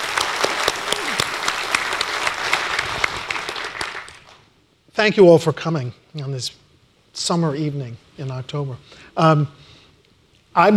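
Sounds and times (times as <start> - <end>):
room full of people applauding: 0.0 - 4.5
speech: 5.0 - 6.6, 7.2 - 9.7, 10.6 - 10.7.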